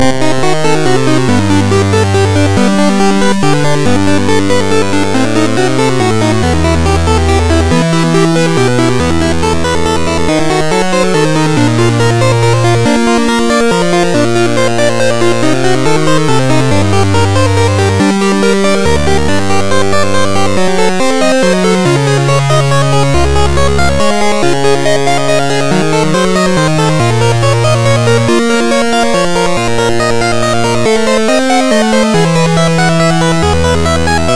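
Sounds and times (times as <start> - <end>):
diminished arpeggio: 0.0 - 34.3.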